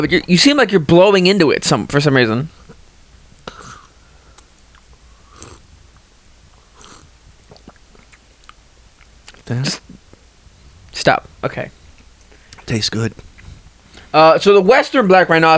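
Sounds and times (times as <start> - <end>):
speech: 0.0 - 2.6, 9.5 - 9.9, 11.0 - 11.8, 12.7 - 13.3, 14.1 - 15.5
slurping hot coffee from a cup: 2.2 - 14.3.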